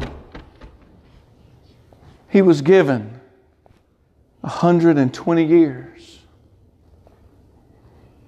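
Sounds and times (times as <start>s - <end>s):
people banging on the wooden door of a boat: 0.0s - 0.9s
speech: 2.3s - 3.2s, 4.4s - 6.2s.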